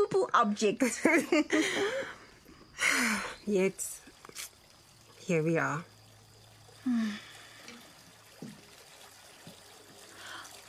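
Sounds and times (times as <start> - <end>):
speech: 0.3 - 2.2, 2.8 - 4.5, 5.3 - 5.9, 6.8 - 7.3
water running from a tap into a bathtub: 3.4 - 10.6.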